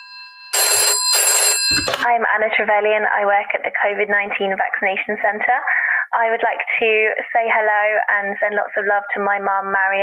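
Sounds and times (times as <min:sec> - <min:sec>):
telephone bell ringing: 0:00.0 - 0:02.1
speech: 0:01.2 - 0:10.0.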